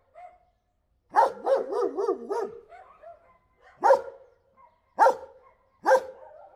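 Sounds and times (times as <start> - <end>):
German Shepherd sharp barks: 1.1 - 2.8, 3.8 - 4.2, 5.0 - 6.2
German Shepherd watchdog giving friendly yelping barks: 1.2 - 4.2, 5.0 - 6.4.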